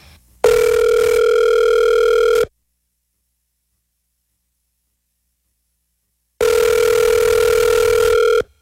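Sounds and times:
telephone ringback tone while a call is being placed: 0.4 - 2.5, 6.4 - 8.5.

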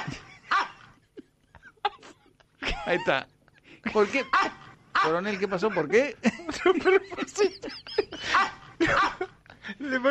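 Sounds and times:
dog barking: 0.0 - 0.9, 4.3 - 5.2
laughter: 0.0 - 10.0
speech: 2.8 - 7.8, 9.9 - 10.0.

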